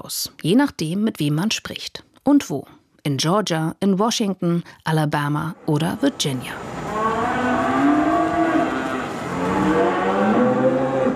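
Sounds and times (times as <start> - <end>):
speech: 0.0 - 6.8
cattle herd with calves mooing in a new open barn in Virginia: 6.6 - 11.1.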